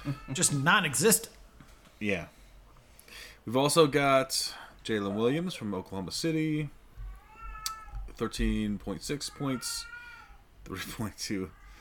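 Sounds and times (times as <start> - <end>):
speech: 0.0 - 1.4, 2.0 - 2.4, 3.1 - 6.8, 8.2 - 9.9, 10.7 - 11.6
cat meowing: 7.0 - 8.1, 9.3 - 10.4.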